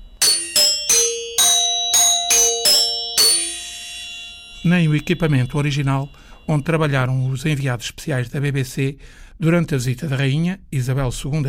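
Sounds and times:
radio gong striking for the hourly time signal: 0:00.0 - 0:07.4
speech: 0:04.6 - 0:11.4.

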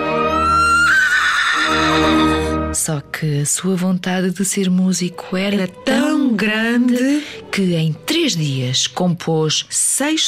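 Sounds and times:
horse neighing: 0:00.5 - 0:02.6
speech: 0:02.9 - 0:10.2.

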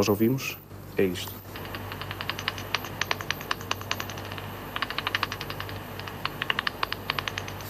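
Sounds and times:
speech: 0:00.0 - 0:01.5
bat echolocation clicks slowed to audible range: 0:01.5 - 0:07.6.

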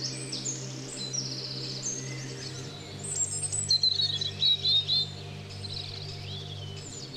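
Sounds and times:
European robin singing on the Salreu walking route: 0:00.0 - 0:07.1
low hum: 0:00.0 - 0:07.1.

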